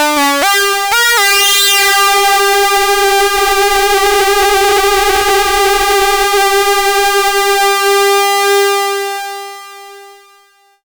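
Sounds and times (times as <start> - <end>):
hard sync synthesizer tone: 0.2 - 9.4.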